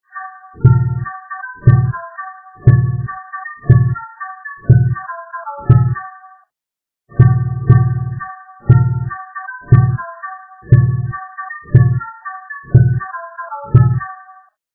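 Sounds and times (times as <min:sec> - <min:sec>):
synth pop melody: 0:00.1 - 0:06.4, 0:07.1 - 0:14.5
drums: 0:00.6 - 0:01.0, 0:01.6 - 0:02.0, 0:02.6 - 0:04.0, 0:04.7 - 0:05.0, 0:05.7 - 0:06.0, 0:07.1 - 0:09.1, 0:09.7 - 0:10.0, 0:10.7 - 0:11.1, 0:11.7 - 0:12.0, 0:12.7 - 0:13.0, 0:13.7 - 0:14.0.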